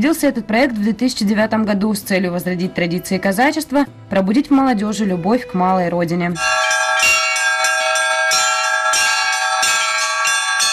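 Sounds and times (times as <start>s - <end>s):
speech: 0.0s - 6.8s
church bells pealing at an open-air ethnographic Cossack village complex: 6.4s - 10.7s.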